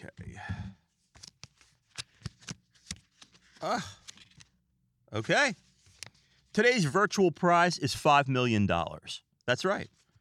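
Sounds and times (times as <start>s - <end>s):
speech: 0.0s - 0.6s, 3.6s - 4.0s, 5.1s - 5.6s, 6.6s - 10.0s
paper envelope being opened: 1.0s - 4.5s.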